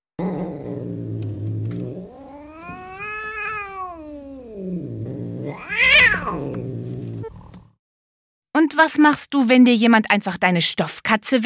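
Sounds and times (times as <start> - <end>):
cat growling and yowling: 0.2 - 7.3
speech: 8.6 - 11.4.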